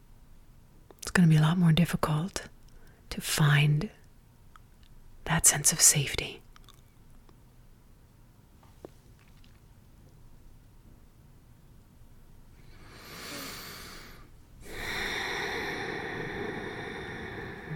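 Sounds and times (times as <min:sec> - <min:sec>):
speech: 0:01.2 - 0:02.6, 0:03.2 - 0:04.0, 0:05.3 - 0:06.4
person taking a quiet breath: 0:12.7 - 0:17.7.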